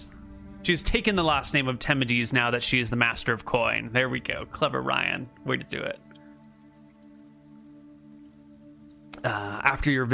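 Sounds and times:
low humming drone: 0.0 - 2.1, 3.8 - 9.6
speech: 0.0 - 6.0, 9.2 - 10.1
light rain pattering: 0.0 - 10.1.

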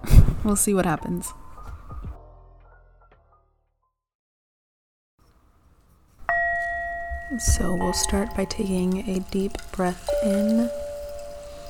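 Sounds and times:
speech: 0.4 - 1.4, 7.3 - 10.8
meditation bell struck during a guided meditation: 6.3 - 11.6.

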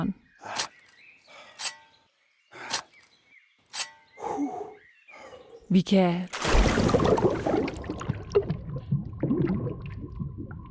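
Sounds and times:
speech: 5.7 - 7.0
loud water splash: 6.3 - 8.4
water sloshing and gurgling with bubbly pops: 6.3 - 10.6.

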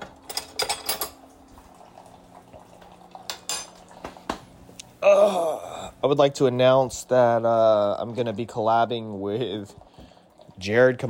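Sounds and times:
spoon and cutlery clattering among dishes while herbal tea and coffee are made: 0.3 - 1.2
speech: 5.0 - 9.8, 10.6 - 11.0.

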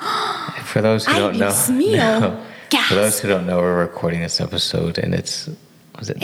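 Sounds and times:
person yawning with a wavering voiced groan: 0.0 - 0.7
speech: 0.7 - 6.2.

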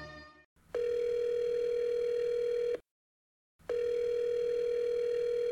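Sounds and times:
telephone ringing: 0.8 - 2.8, 3.7 - 5.4.

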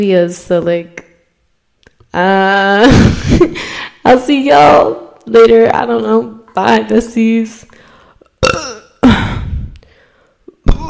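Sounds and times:
speech: 0.0 - 1.0, 2.1 - 7.7
brief throaty sound: 8.2 - 9.9, 10.5 - 10.8
person burping: 8.4 - 9.5, 10.5 - 10.8.

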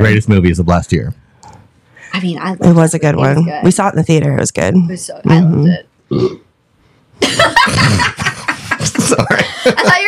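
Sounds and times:
speech: 0.0 - 1.2, 2.1 - 6.4, 7.2 - 10.0
person burping: 6.1 - 6.5
laughter: 7.2 - 10.0.

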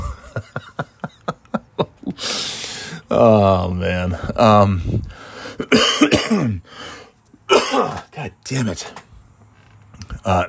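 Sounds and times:
laughter: 0.0 - 2.2
brief wheezy breath: 2.2 - 3.1, 5.0 - 5.6, 6.6 - 7.2
speech: 3.1 - 6.8, 7.7 - 9.0, 10.2 - 10.4
harsh throaty coughing: 5.6 - 6.6, 7.5 - 8.1.

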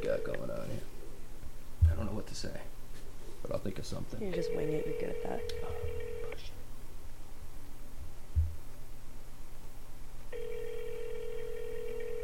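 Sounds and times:
speech: 0.0 - 0.6, 2.3 - 2.7, 3.6 - 6.5
faint low hum: 0.0 - 12.2
phone ringback tone of a call to a sandwich shop: 4.4 - 6.4, 10.3 - 12.2.

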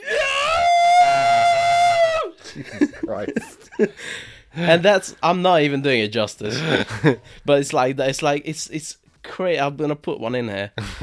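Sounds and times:
human voice imitating a cartoon cat's pained scream: 0.0 - 2.4
laughter: 2.4 - 4.1, 6.5 - 7.2
speech: 2.6 - 11.0.

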